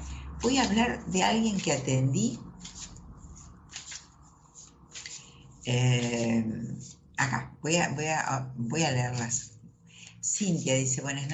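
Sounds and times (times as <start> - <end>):
tarot cards being shuffled: 0.0 - 5.4, 6.0 - 7.0
low steady hum: 0.0 - 11.3
speech: 0.4 - 2.5, 5.7 - 9.5, 10.4 - 11.3.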